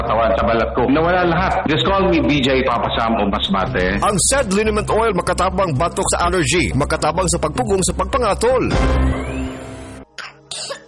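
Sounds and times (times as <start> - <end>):
speech: 0.0 - 9.4
child coughing up phlegm: 10.2 - 10.8.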